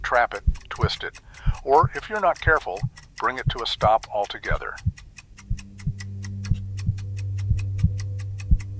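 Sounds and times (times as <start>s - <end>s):
clock ticking: 0.0s - 8.7s
speech: 0.1s - 5.0s
deep irregular thuds: 4.8s - 8.7s
constant low hum: 5.4s - 8.7s.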